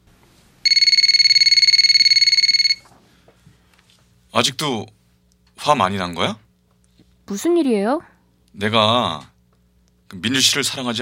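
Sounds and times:
telephone ringing with an electronic trill: 0.6 - 2.9
speech: 4.4 - 5.0, 5.6 - 6.4, 7.3 - 9.3, 10.1 - 10.9.

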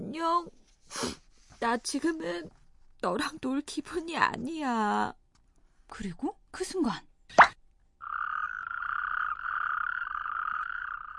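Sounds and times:
speech: 0.1 - 5.2, 5.9 - 7.6
toad buzzing and trilling croak: 7.4 - 11.1.

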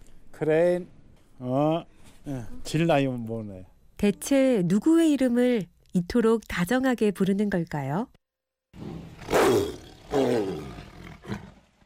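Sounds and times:
speech: 0.4 - 10.3
tiger roaring in a zoo: 8.8 - 11.8.

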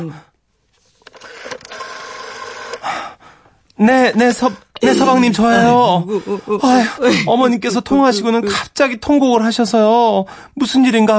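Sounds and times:
speech: 0.0 - 0.3, 3.8 - 11.1
telephone dial clicks: 1.0 - 2.8.

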